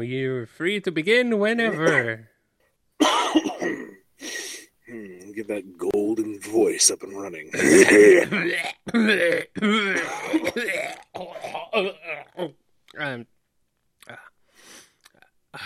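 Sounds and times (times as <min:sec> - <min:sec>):
speech: 0:00.0 - 0:02.3, 0:03.0 - 0:13.3, 0:14.1 - 0:14.3
person clearing throat: 0:01.6 - 0:02.2, 0:03.0 - 0:04.0, 0:07.5 - 0:12.3
person coughing: 0:01.7 - 0:02.2, 0:03.0 - 0:04.0, 0:07.5 - 0:12.0.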